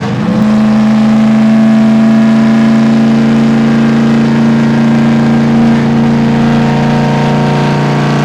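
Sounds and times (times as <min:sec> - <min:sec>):
jalopy downshifting: 0:00.8 - 0:08.2.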